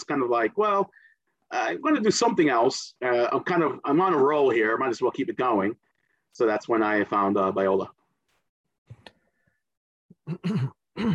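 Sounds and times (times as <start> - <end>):
speech: 0.1 - 8.0, 10.3 - 11.1
person clearing throat: 10.1 - 11.1.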